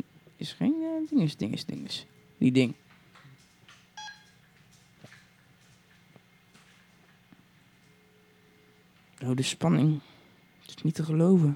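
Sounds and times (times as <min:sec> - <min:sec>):
speech: 0:00.0 - 0:02.8, 0:09.3 - 0:10.1, 0:10.7 - 0:11.5
telephone touch-tone beep while dialing a number: 0:04.0 - 0:04.4.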